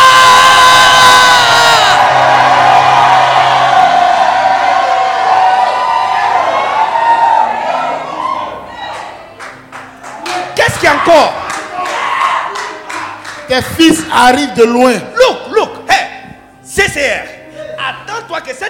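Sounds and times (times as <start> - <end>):
crowd shouting with joy, cheering and whooping: 0.0 - 9.4, 10.7 - 13.2
speech: 10.9 - 11.4, 13.5 - 15.4.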